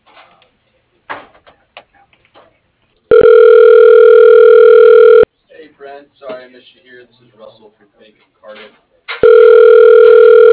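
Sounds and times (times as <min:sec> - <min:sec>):
telephone line tone during a call transfer to voicemail: 0:03.1 - 0:05.3, 0:09.2 - 0:10.5.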